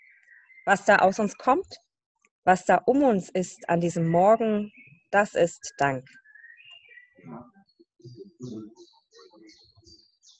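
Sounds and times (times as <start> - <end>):
birds singing: 0.0 - 1.8, 2.8 - 10.3
speech: 0.7 - 1.8, 2.4 - 6.2, 7.2 - 9.6
low murmuring voice-like layer: 7.2 - 7.5, 8.1 - 9.9.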